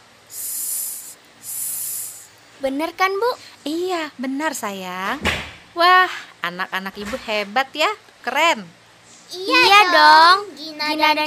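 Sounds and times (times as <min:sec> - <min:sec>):
child imitating a snake's hiss: 0:00.3 - 0:02.3
speech: 0:02.6 - 0:11.2.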